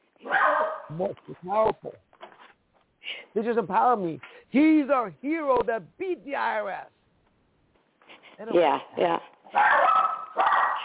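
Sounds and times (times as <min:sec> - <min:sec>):
dog barking and yipping with whimpering tones: 0:00.2 - 0:00.9, 0:09.5 - 0:10.8
speech: 0:00.3 - 0:02.1, 0:03.4 - 0:07.0, 0:08.4 - 0:09.8.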